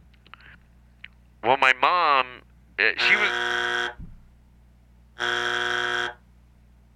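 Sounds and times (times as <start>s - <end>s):
speech: 1.4s - 2.0s, 2.8s - 3.5s
loud flat electronic buzzer: 3.0s - 4.0s, 5.2s - 6.2s.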